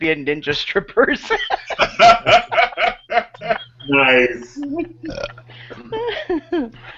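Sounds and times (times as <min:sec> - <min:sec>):
speech: 0:00.0 - 0:02.6, 0:03.9 - 0:06.2
low steady hum: 0:00.0 - 0:06.9
laughter: 0:01.1 - 0:06.9
loud drawn-out croaking burps: 0:05.1 - 0:05.9.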